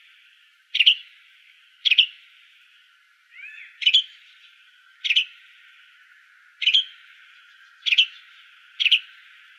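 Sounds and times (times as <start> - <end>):
flame-colored tanager calling sharp double-noted chips: 0.7 - 1.2, 1.8 - 2.3, 3.3 - 4.4, 5.0 - 5.6, 6.6 - 9.2.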